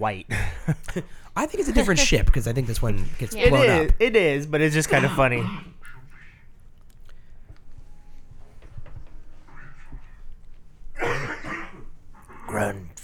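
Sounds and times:
speech: 0:00.0 - 0:05.7
person coughing and clearing throat: 0:04.9 - 0:05.9, 0:11.0 - 0:12.6.

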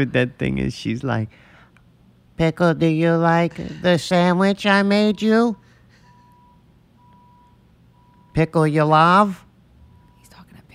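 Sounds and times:
speech: 0:00.0 - 0:01.5, 0:02.4 - 0:05.6, 0:08.4 - 0:09.4
truck reversing alarm beeps: 0:04.6 - 0:10.4.

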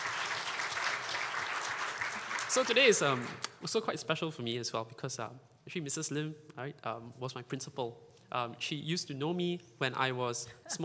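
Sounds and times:
audience applause: 0:00.0 - 0:03.4
speech: 0:02.6 - 0:10.8.

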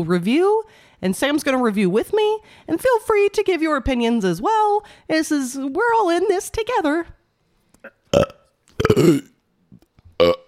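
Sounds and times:
speech: 0:00.0 - 0:07.2, 0:07.8 - 0:09.3, 0:10.2 - 0:10.4
breaths: 0:00.7 - 0:01.0, 0:02.4 - 0:02.7, 0:04.8 - 0:05.1
loud burps: 0:07.8 - 0:09.4, 0:10.2 - 0:10.4.

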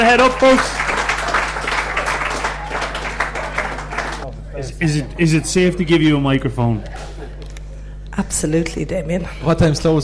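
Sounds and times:
speech: 0:00.0 - 0:00.8, 0:04.6 - 0:07.0, 0:08.2 - 0:10.0
live audience applause: 0:00.0 - 0:04.2.

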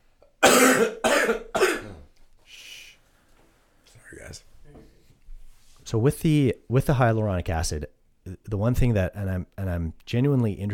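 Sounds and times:
loud coughs: 0:00.4 - 0:02.1
speech: 0:05.9 - 0:10.7.

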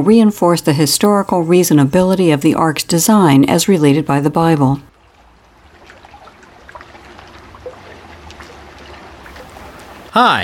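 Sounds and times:
speech: 0:00.0 - 0:04.9, 0:10.1 - 0:10.4
faint splashes and drips: 0:04.9 - 0:10.1
water lapping and trickling around a small rowboat on a pond: 0:04.9 - 0:10.3.

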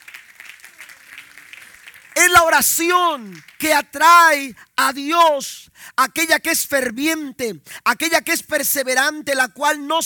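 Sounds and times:
audience applauding: 0:00.0 - 0:03.9
speech: 0:02.2 - 0:10.0.

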